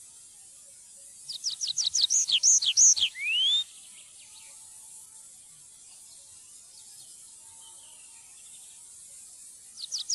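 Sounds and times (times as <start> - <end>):
Tree pipit song phrase: 0.6 - 4.9, 5.7 - 8.9, 9.7 - 10.1.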